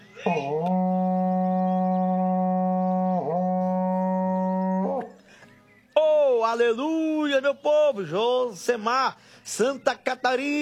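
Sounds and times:
speech: 0.2s - 0.8s, 6.5s - 10.5s
berrante cattle horn blown in long droning blasts: 0.3s - 5.1s.

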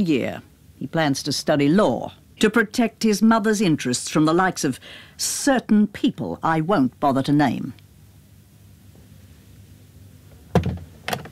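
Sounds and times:
speech: 0.0s - 7.8s
door eased shut with soft thud and short rattle: 10.5s - 11.3s.

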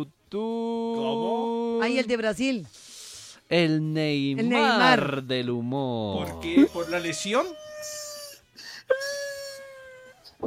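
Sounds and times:
speech: 0.0s - 2.9s, 3.5s - 8.0s
person wailing and sobbing: 6.1s - 10.2s.

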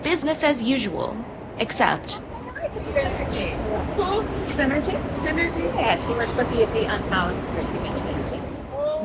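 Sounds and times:
speech: 0.1s - 9.0s
overlapping indistinct voices in a historic train and bus station near the U.S. Capitol: 1.8s - 9.0s.

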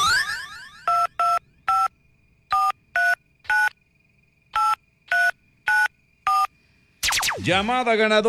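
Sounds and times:
touch-tone beeps of a phone number being dialed: 0.9s - 1.9s, 2.5s - 3.7s, 4.6s - 6.5s
speech: 7.4s - 8.2s.

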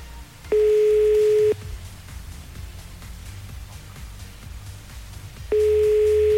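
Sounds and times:
telephone ringing tone on an unanswered call: 0.6s - 1.6s, 5.6s - 6.3s.

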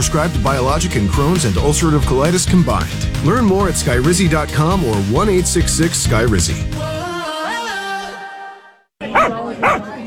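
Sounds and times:
speech: 0.0s - 7.0s
dog barking: 9.0s - 10.0s.

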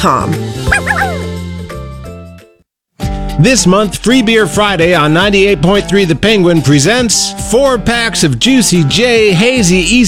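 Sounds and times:
speech: 0.0s - 1.0s, 3.4s - 10.0s
dog giving high yapping barks: 0.7s - 1.2s.

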